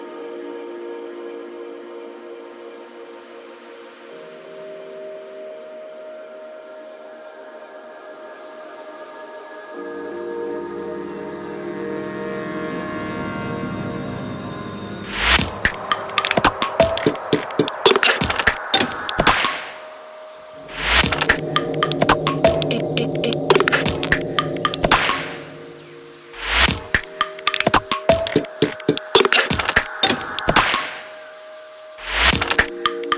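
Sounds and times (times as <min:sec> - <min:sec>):
sustained layered synth pad in electronica track: 0:00.0 - 0:33.1
sharp glitchy clicking percussion: 0:15.1 - 0:19.8, 0:20.7 - 0:25.6, 0:26.4 - 0:31.1, 0:32.0 - 0:33.1.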